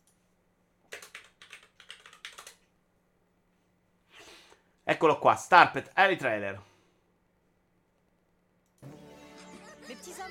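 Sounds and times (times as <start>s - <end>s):
computer keyboard typing as a search is entered: 0.9s - 2.7s
speech: 4.9s - 6.7s.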